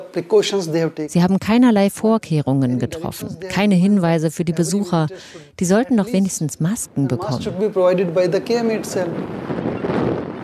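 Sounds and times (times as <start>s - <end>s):
speech: 0.1s - 10.1s
rushing wind blowing outdoors with gusty swells: 7.4s - 10.4s.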